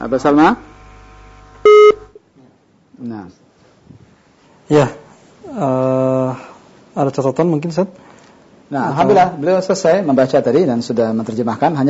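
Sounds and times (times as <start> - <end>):
speech: 0.0 - 0.7, 3.0 - 4.0, 4.7 - 5.0, 5.6 - 6.1, 7.0 - 8.1, 8.7 - 11.8
telephone tone as a line drops during a call: 1.6 - 2.0.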